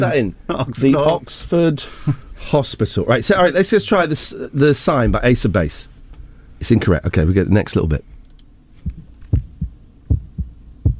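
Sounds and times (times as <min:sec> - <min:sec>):
speech: 0:00.0 - 0:05.9, 0:06.6 - 0:08.1
soft hum: 0:08.0 - 0:10.9
heartbeat thumping in paired lub-dub beats: 0:08.8 - 0:10.9.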